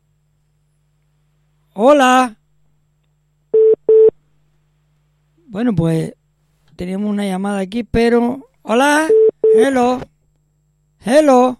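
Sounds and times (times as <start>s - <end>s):
speech: 1.8s - 2.4s, 5.5s - 6.2s, 6.8s - 10.1s, 11.0s - 11.5s
telephone busy tone after a call is cut off: 3.6s - 4.1s.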